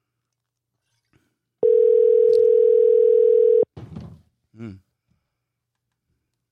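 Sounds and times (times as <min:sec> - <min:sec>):
ringback tone on a phone line: 0:01.6 - 0:03.7
vocal sounds: 0:04.6 - 0:04.8.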